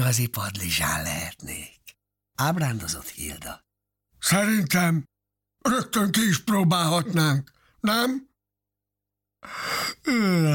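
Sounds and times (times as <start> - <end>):
speech: 0.1 - 1.8, 2.4 - 3.6, 4.2 - 8.3, 9.4 - 10.5
voice acting out a yawn: 9.4 - 10.5.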